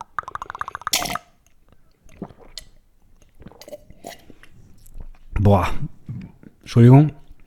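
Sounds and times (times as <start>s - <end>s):
loud gulping of cola in ASMR style: 0.0s - 5.1s
wet mouth sounds and smacks: 0.0s - 5.4s
speech: 5.5s - 5.9s, 6.7s - 7.2s.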